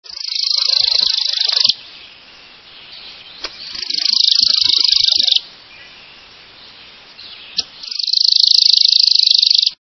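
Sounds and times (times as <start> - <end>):
Worm-eating Warbler singing: 0.1 - 9.8.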